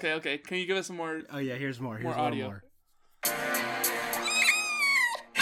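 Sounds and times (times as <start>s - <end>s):
speech: 0.0s - 3.5s
cat meowing: 4.2s - 5.3s.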